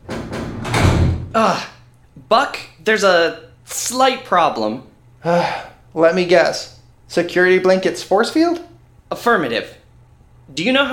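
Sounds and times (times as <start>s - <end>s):
door being opened: 0.0s - 1.4s
speech: 1.4s - 9.8s, 10.5s - 10.9s.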